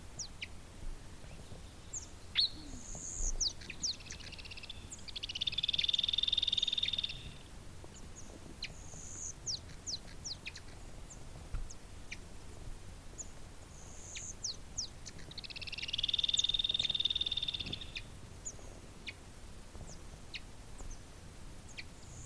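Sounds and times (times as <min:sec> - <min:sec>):
Andean flicker Colaptes rupicola trilling call: 0:02.4 - 0:07.5, 0:15.0 - 0:18.1.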